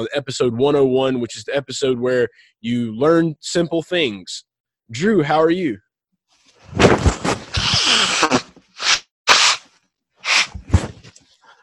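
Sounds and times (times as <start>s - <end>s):
speech: 0.0s - 5.8s
person blowing nose: 7.4s - 11.1s.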